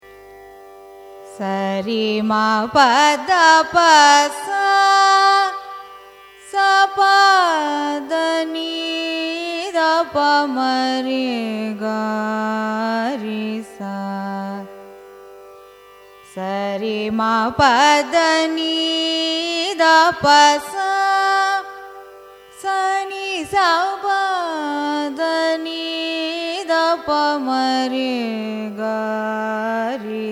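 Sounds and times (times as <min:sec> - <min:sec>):
Carnatic raga ascending and descending scale: 0:00.0 - 0:30.3.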